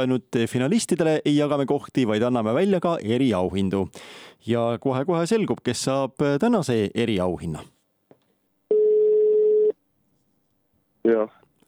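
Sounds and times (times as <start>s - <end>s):
speech: 0.0s - 7.8s, 11.0s - 11.4s
ringback tone of an outgoing phone call: 8.7s - 9.8s.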